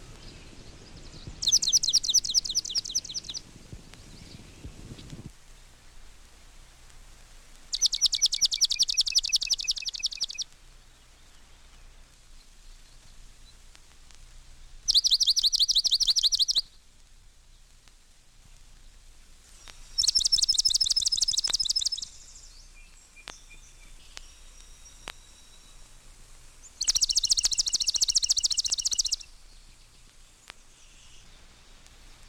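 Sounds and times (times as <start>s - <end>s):
Swamp Sparrow song: 0.0s - 5.3s, 7.7s - 13.5s, 14.8s - 16.8s, 19.7s - 31.9s.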